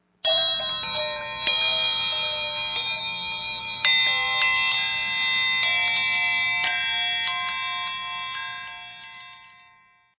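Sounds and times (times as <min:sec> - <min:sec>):
large garden bells ringing: 0:00.2 - 0:10.1.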